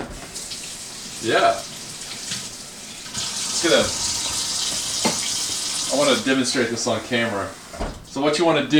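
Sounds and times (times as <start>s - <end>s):
running tap water filling a container to soak small gadget balls: 0.0s - 6.7s
speech: 1.2s - 1.7s, 3.6s - 4.2s, 6.0s - 7.6s, 8.2s - 8.7s.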